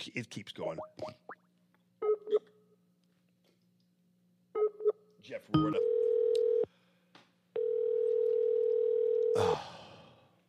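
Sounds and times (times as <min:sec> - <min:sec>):
speech: 0:00.1 - 0:01.2, 0:05.3 - 0:06.0
electronic ringback tone from an outgoing phone call: 0:05.6 - 0:06.7, 0:07.6 - 0:09.3.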